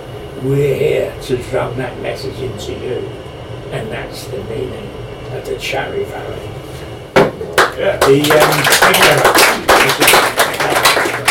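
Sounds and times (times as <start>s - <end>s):
speech: 0.4s - 6.6s, 7.8s - 10.3s
audience clapping at a poetry reading: 7.5s - 11.2s.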